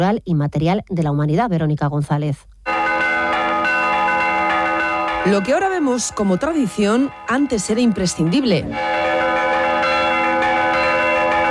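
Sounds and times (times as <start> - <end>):
speech: 0.0 - 2.5, 5.2 - 9.0
traditional village church bells ringing: 2.7 - 11.5.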